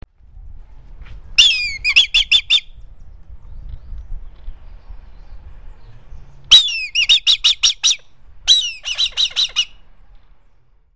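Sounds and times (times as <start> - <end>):
quiet low rumble: 0.0 - 10.9
eagle calling with sharp high yelping notes in Ethiopia: 1.4 - 2.7, 6.5 - 9.8.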